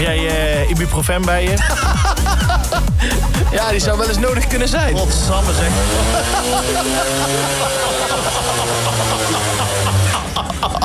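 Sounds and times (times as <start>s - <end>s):
speech: 0.1s - 8.4s
laughter: 1.4s - 3.8s, 5.4s - 10.8s
small two-stroke moped engine droning riding laps: 4.6s - 10.6s.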